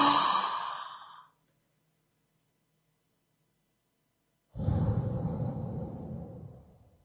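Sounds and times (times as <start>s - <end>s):
person taking a big breath in: 0.0s - 1.3s, 4.6s - 6.9s.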